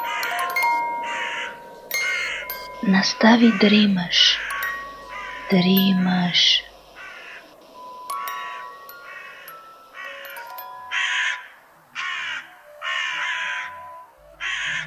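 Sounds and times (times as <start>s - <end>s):
other bird chirps: 0.0s - 11.6s
crows cawing in the morning in Berlin: 0.0s - 13.8s, 14.4s - 14.8s
outdoor ambience: 0.0s - 14.8s
speech: 2.8s - 4.4s, 5.5s - 6.7s.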